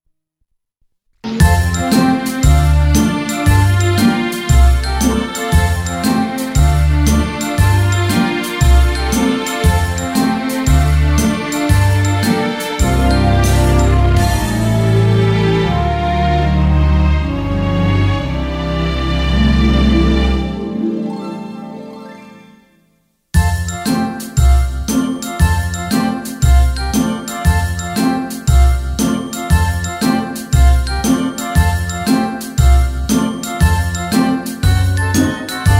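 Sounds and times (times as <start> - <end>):
instrumental backing track: 1.2 - 22.5, 23.4 - 35.7.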